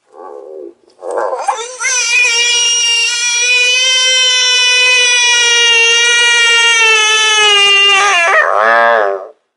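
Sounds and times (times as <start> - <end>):
bullfrog being eaten by watersnake: 1.1 - 8.4.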